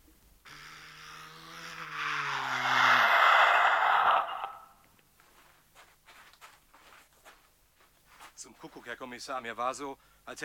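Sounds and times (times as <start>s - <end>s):
police cars pulling up outside: 0.6s - 4.8s
speech: 8.6s - 10.4s.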